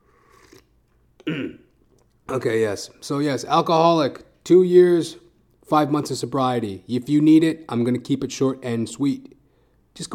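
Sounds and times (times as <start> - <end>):
person slurping a sip of coffee: 0.0 - 0.7
speech: 2.3 - 9.4, 10.0 - 10.1.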